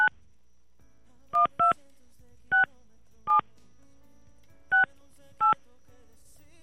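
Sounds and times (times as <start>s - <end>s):
faint low hum: 0.0s - 6.6s
telephone keypad DTMF dual-tone beeps as a number is dialed: 1.4s - 1.9s, 2.5s - 3.5s, 4.7s - 5.6s.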